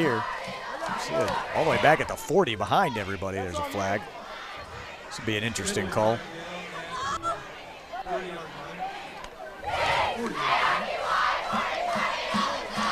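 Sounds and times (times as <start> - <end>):
speech: 0.0 - 4.2, 5.1 - 6.5
faint voices of a broadcast booth: 0.0 - 11.4
large football crowd roaring and chanting in a stadium: 0.0 - 12.9.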